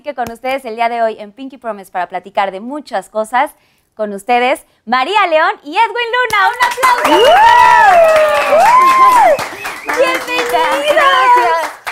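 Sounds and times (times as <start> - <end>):
speech: 0.0 - 11.8
people clapping: 6.3 - 11.9
people whooping and cheering: 6.9 - 11.9
people shouting: 7.1 - 9.4, 10.0 - 11.7.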